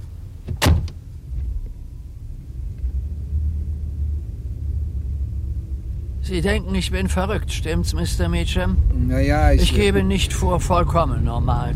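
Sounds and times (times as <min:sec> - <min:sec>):
car engine rumbling low after pulling up: 0:00.0 - 0:11.7
single sharp clunk: 0:00.4 - 0:01.6
speech: 0:06.3 - 0:11.7.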